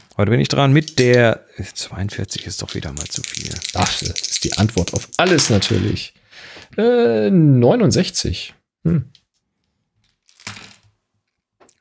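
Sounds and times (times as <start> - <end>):
speech: 0.2 - 9.2
small hard object clattering across a surface: 0.7 - 1.3, 2.2 - 6.1.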